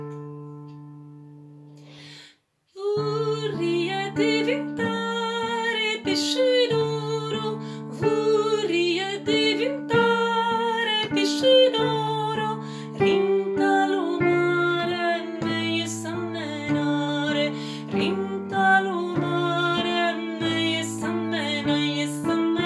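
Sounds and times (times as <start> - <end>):
sopranos singing a fisherman's song: 2.8 - 22.6.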